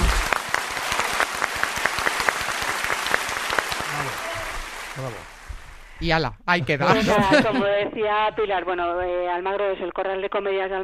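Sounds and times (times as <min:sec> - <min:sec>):
small group clapping: 0:00.0 - 0:05.4
speech: 0:06.0 - 0:10.8
laughter: 0:06.6 - 0:08.1.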